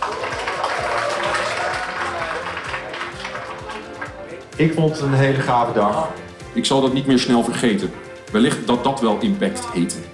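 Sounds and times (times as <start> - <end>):
crowd applauding: 0.0 - 4.6
speech: 4.6 - 10.1.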